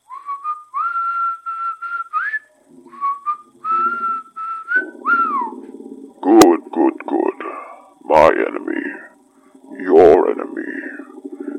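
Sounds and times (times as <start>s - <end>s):
low buzzy tone: 0.0s - 11.5s
person whistling a melody: 0.1s - 5.6s
speech: 8.2s - 8.7s.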